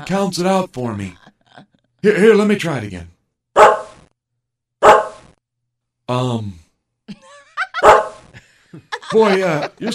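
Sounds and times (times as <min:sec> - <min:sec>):
speech: 0:00.0 - 0:01.2, 0:02.0 - 0:03.1, 0:06.1 - 0:06.6, 0:08.7 - 0:09.9
laughter: 0:00.8 - 0:02.0, 0:07.1 - 0:09.9
dog barking: 0:03.6 - 0:04.0, 0:04.8 - 0:05.2, 0:07.8 - 0:08.2.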